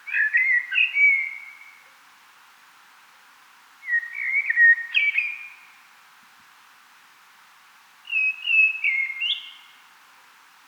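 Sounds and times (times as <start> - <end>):
common blackbird Turdus merula singing: 0.0 - 1.8, 3.8 - 5.7, 8.1 - 9.8.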